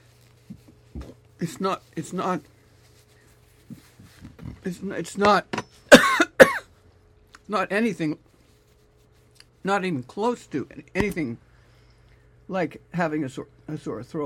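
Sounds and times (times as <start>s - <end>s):
speech: 1.4s - 2.6s, 4.6s - 5.6s, 7.5s - 8.3s, 9.6s - 11.5s, 12.5s - 14.2s
person coughing from a tickle in the throat: 5.9s - 6.7s.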